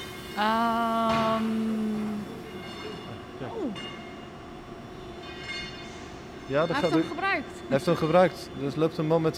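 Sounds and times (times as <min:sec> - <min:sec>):
modern tram steady electric whine: 0:00.0 - 0:09.3
speech: 0:00.4 - 0:01.6, 0:06.5 - 0:09.3
brief metallic squeal as the tram moves off: 0:02.2 - 0:04.3, 0:05.0 - 0:08.9.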